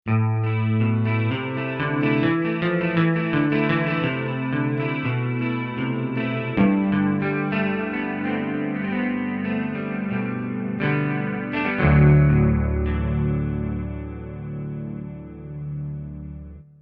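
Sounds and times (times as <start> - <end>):
emo verse guitars: 0.1 - 16.7.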